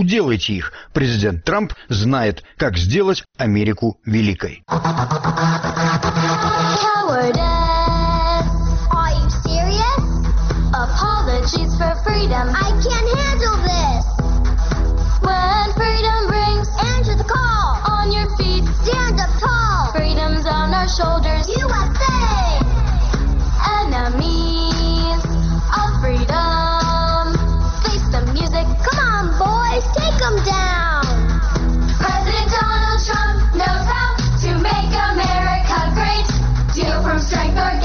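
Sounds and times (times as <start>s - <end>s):
speech: 0.0s - 7.8s
loud steady instrumental backing: 4.7s - 37.8s
children singing a hip-hop campaign song: 32.0s - 37.8s.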